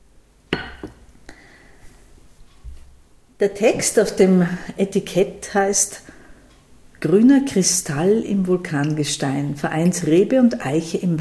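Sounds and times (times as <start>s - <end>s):
wine glass ringing tone: 0.6s - 1.0s
wine glasses clinking in a toast: 0.6s - 1.0s
speech: 3.4s - 6.2s, 7.0s - 11.1s.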